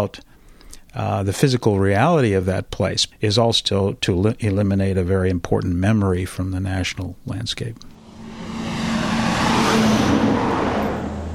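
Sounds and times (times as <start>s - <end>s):
speech: 0.0s - 0.3s, 0.9s - 7.9s
heavy coal truck roaring past: 8.0s - 11.3s.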